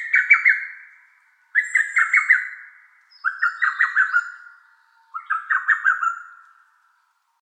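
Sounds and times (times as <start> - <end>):
lesser cuckoo song: 0.0 - 7.0.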